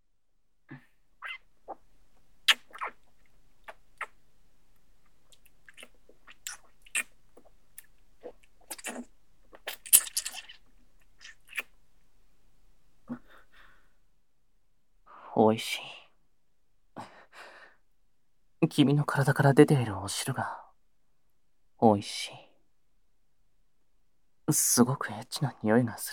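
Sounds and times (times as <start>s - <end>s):
wet kissing sounds: 2.5s - 3.0s, 3.6s - 4.2s, 5.7s - 10.6s, 11.2s - 11.7s
speech: 15.5s - 15.9s, 18.6s - 20.6s, 21.8s - 22.4s, 24.5s - 26.1s.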